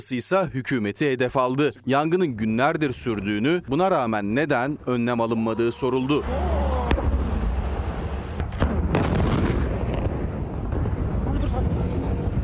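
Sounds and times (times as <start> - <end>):
speech: 0.0 - 6.6
steady heavy rumbling roar: 5.3 - 12.4
explosions at a military air base: 6.3 - 12.4.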